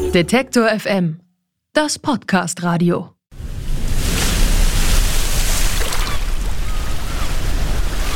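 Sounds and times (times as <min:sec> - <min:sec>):
speech: 0:00.1 - 0:03.1
rush of water and wind around a boat: 0:03.3 - 0:08.1
waves slapping against a sailboat: 0:03.3 - 0:08.1.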